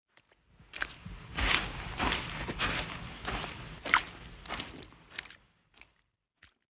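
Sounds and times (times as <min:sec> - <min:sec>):
footsteps on sand: 0:00.6 - 0:05.9.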